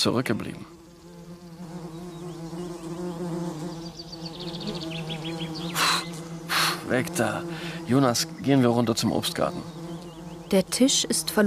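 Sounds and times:
speech: 0:00.0 - 0:00.8, 0:06.9 - 0:09.8, 0:10.5 - 0:11.4
wasps buzzing around leftover fig bread on a garden table: 0:00.1 - 0:11.4.

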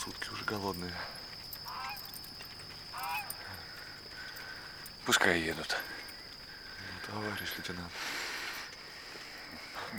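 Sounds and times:
noise: 0:00.0 - 0:09.9
speech: 0:00.1 - 0:01.2, 0:05.0 - 0:06.0, 0:07.1 - 0:08.2
caged poultry honking on a cart: 0:03.0 - 0:03.3.

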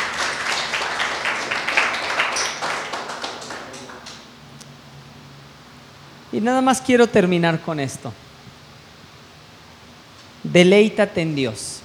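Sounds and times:
audience applauding at a religious talk: 0:00.0 - 0:04.3
speech: 0:06.3 - 0:08.2, 0:10.5 - 0:11.7.

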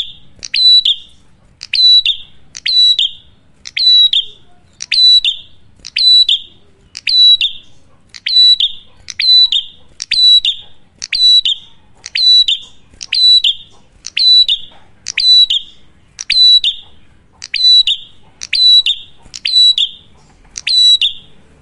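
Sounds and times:
duet of Cililin and Kapas Tembak prinias chirping: 0:00.0 - 0:21.6.

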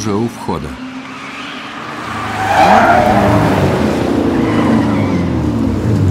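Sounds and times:
black two-seat car engine roaring as it tears past: 0:00.1 - 0:06.1
car tyres screeching and skidding: 0:01.0 - 0:05.6.

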